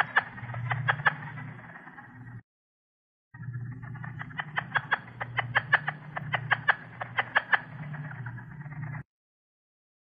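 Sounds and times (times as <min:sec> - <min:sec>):
plains leopard frog giving chuckling pulses: 0:00.0 - 0:01.8, 0:03.9 - 0:09.0
steady low hum: 0:00.0 - 0:02.4, 0:03.4 - 0:09.1.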